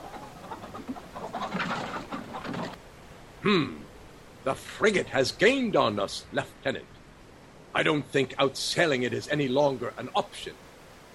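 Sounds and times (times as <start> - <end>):
flurry of wingbeats of a released pigeon taking off: 0.0 - 2.8
speech: 3.4 - 3.8, 4.4 - 6.9, 7.7 - 10.6.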